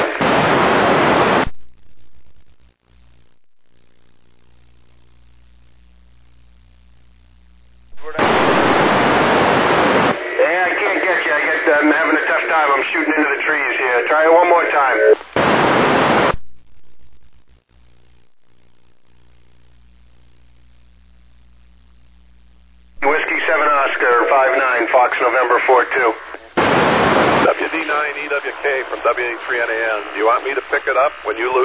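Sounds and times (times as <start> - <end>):
harsh static from a fading satellite radio signal: 0.0 - 31.6
faint garbled voice over satellite radio: 8.0 - 8.7, 10.3 - 15.2, 23.0 - 26.4, 27.3 - 31.6.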